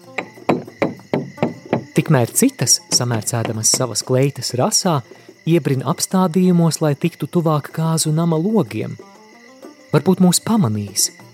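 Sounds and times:
loud knocking on a wooden door: 0.0 - 4.1
speech: 2.0 - 9.1, 9.9 - 11.2.

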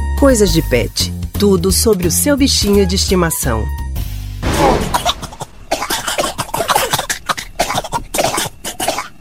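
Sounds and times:
speech: 0.2 - 3.8
person coughing harshly: 4.6 - 9.1.

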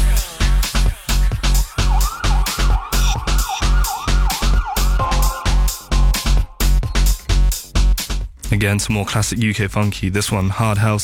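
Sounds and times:
pounding dance beat with heavy bass hits: 0.0 - 8.4
police-style siren in a music track: 1.3 - 6.6
speech: 8.6 - 11.0.

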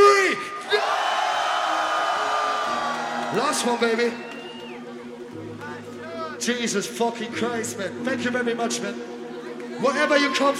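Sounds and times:
large crowd screaming and roaring: 0.4 - 5.2, 9.8 - 10.5
speech: 3.4 - 4.3, 6.4 - 9.1, 9.8 - 10.5.

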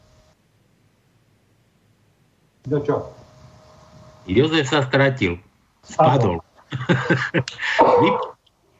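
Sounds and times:
speech: 2.7 - 3.2, 4.2 - 8.3
laughter: 6.1 - 8.4
man coughing into a microphone: 6.8 - 8.4.

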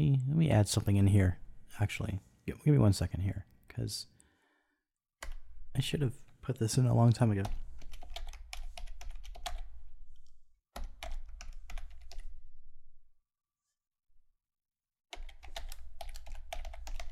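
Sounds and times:
speech: 0.0 - 4.1, 5.2 - 7.6
rapid typing on a computer keyboard: 7.4 - 9.7, 10.8 - 12.3, 15.1 - 17.1.

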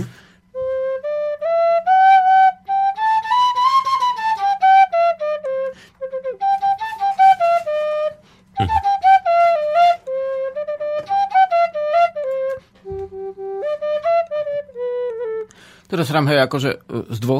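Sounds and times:
folk pipe playing a Lydian scale: 0.0 - 15.6
speech: 16.0 - 17.3.

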